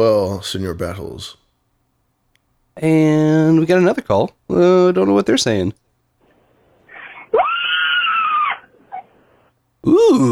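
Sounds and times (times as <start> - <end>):
speech: 0.0 - 1.4, 2.8 - 5.8, 9.8 - 10.3
breath: 6.2 - 7.3, 8.7 - 9.6
person screaming desperately: 7.3 - 8.7, 9.8 - 10.3.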